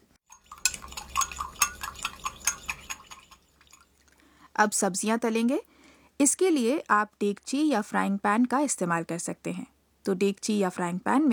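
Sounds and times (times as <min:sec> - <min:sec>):
metal spoon clinking while stirring dashi stock with soy sauce and sugar: 0:00.3 - 0:03.8
speech: 0:04.6 - 0:11.3.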